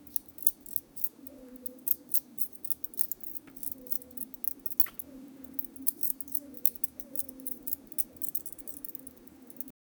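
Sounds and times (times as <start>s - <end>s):
soft bangles clinking: 0.0s - 9.8s.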